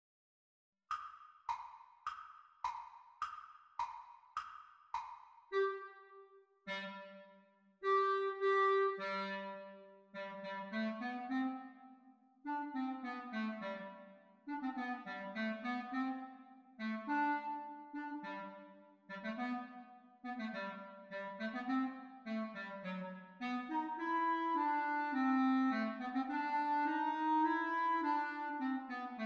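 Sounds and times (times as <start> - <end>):
clarinet duet at exam speed: 5.5 - 6.1, 6.7 - 29.2.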